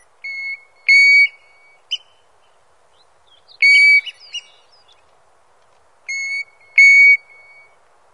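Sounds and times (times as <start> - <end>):
European golden plover giving plaintive even-pitched whistles: 0.2 - 2.2, 3.6 - 4.6, 6.1 - 7.8.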